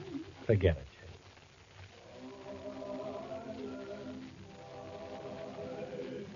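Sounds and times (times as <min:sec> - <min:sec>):
speech: 0:00.5 - 0:00.9
small group of Christmas carolers singing a carol in harmony: 0:02.0 - 0:06.3.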